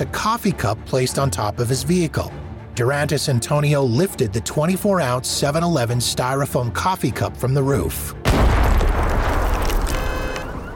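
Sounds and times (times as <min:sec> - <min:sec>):
speech: 0:00.0 - 0:08.3
pipe bomb explosion at night on a car roof atop a parking garage: 0:08.2 - 0:10.0.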